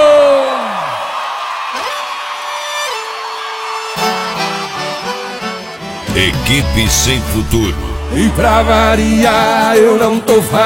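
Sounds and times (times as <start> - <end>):
crowd shouting and whooping: 0.0 - 4.9
speech: 6.5 - 10.6.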